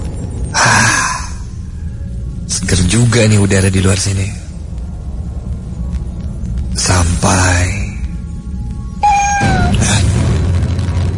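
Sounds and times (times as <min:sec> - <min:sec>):
low rumble: 0:00.0 - 0:11.1
speech: 0:02.7 - 0:04.4, 0:07.2 - 0:07.7
cat meowing outside a house at night: 0:09.0 - 0:09.8.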